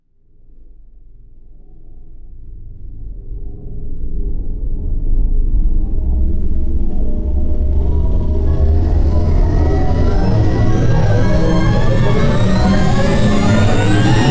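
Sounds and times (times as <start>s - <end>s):
synthetic electrical hum accelerating in pitch: 5.0s - 14.2s.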